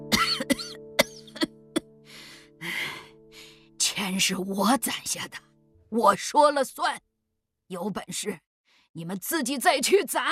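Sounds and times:
elderly person coughing hard after choking on smoke: 0.1s - 1.9s
speech: 4.1s - 7.1s, 7.7s - 10.3s.

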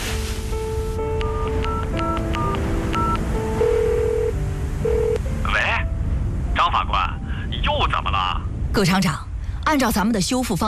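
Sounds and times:
constant hissing background: 0.0s - 10.6s
telephone keypad dialing tones: 1.2s - 5.2s
speech: 8.8s - 10.6s.

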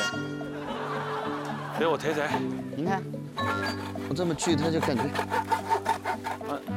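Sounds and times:
people laughing: 0.1s - 2.5s
hand saw cutting through wood: 1.7s - 2.5s, 3.4s - 6.7s.

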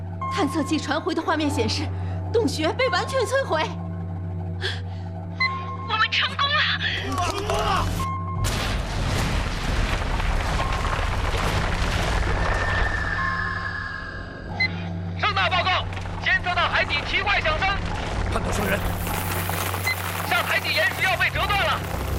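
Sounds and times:
low hum: 0.0s - 22.1s
powerful underwater explosion toward an undersea cave: 8.4s - 13.6s.

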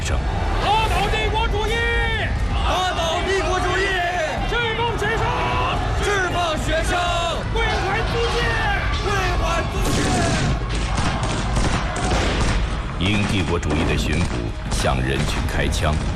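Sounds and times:
voices shouting: 0.2s - 12.9s
crowd noise of protesting students and citizens: 0.2s - 16.1s
police gunfire into a crowd: 9.8s - 14.9s.

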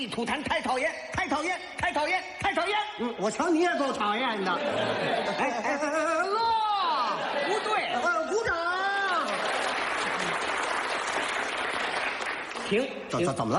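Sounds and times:
speech: 0.0s - 6.6s, 12.7s - 13.5s
audience voices and laughter: 4.4s - 10.5s
audience applause: 9.0s - 12.7s.

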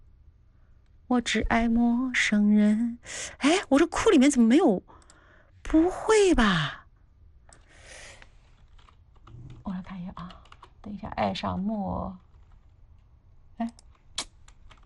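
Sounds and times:
low steady hum: 0.0s - 14.8s
speech: 1.1s - 4.9s, 5.6s - 6.8s, 10.9s - 12.2s, 13.6s - 13.8s
typing on a computer keyboard: 8.6s - 11.0s, 13.6s - 14.8s.

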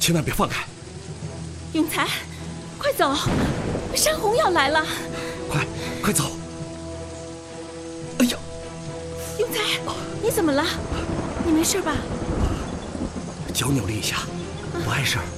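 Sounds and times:
rain-like noise of a rainstorm: 0.0s - 15.3s
low rolling thunder: 3.1s - 5.7s, 10.0s - 15.2s.

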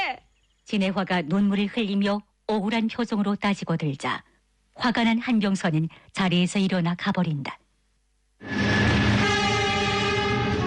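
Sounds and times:
speech: 0.7s - 7.6s
moving train rumbling along the rails: 8.4s - 10.6s
sustained horn-like tone: 8.4s - 10.6s.

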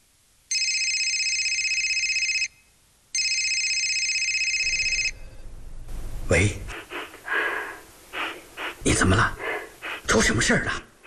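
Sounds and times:
telephone ringing with electronic trills: 0.5s - 5.2s
speech: 6.3s - 6.9s, 9.0s - 9.4s, 10.1s - 10.9s.

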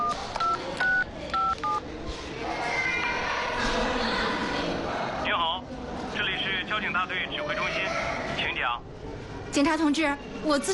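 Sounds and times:
touch-tone telephone beeps dialing a number: 0.0s - 1.8s
busy noise: 0.0s - 10.7s
speech: 7.0s - 8.9s, 9.5s - 10.7s.

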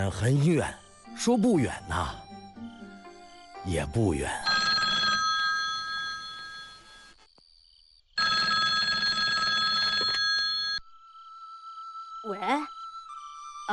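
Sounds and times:
speech: 0.0s - 2.2s, 3.6s - 4.6s
telephone ringing with bright trilling bells: 4.4s - 7.2s, 8.2s - 10.8s.

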